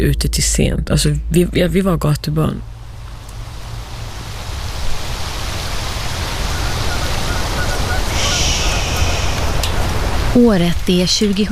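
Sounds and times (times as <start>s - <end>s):
speech: 0.0s - 2.8s, 10.4s - 11.5s
low rumble: 0.0s - 11.5s
heavy rain pouring into an outdoor pool: 2.8s - 11.5s.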